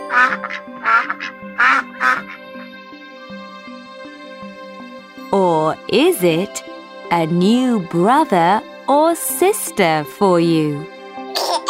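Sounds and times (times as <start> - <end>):
duckling quacking: 0.1 - 2.4
speech: 0.1 - 2.4, 5.3 - 11.6.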